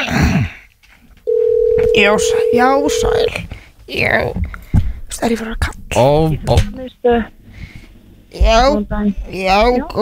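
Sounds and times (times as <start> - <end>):
telephone dial tone while placing a call to a sports centre: 1.3 - 3.3
speech: 2.0 - 4.6, 5.2 - 7.4, 8.3 - 10.0.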